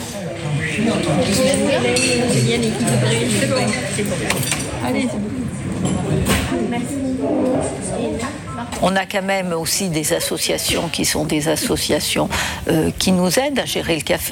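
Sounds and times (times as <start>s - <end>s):
chatter from several people: 0.0s - 14.3s
speech: 0.8s - 14.3s
dishes and cutlery clinking in a busy café: 0.9s - 6.5s.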